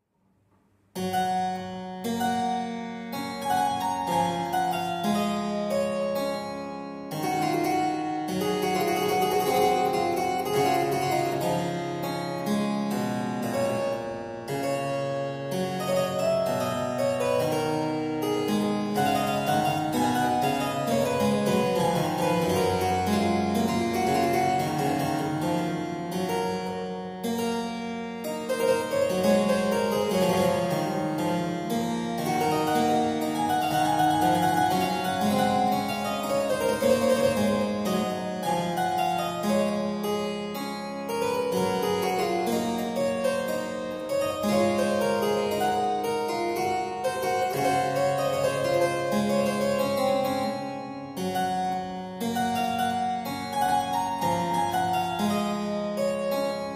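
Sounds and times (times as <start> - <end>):
aria played on harpsichord: 0.9 - 56.7.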